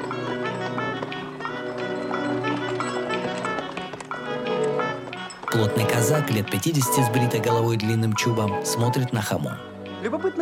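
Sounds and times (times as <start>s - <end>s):
hooves of two horses pulling a covered wagon clip-clopping: 0.0s - 6.6s
speech: 5.6s - 10.4s.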